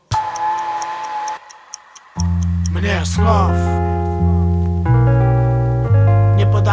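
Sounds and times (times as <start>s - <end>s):
time bomb ticking: 0.0s - 4.4s
speech: 2.2s - 4.4s
low sustained hum: 2.2s - 6.4s.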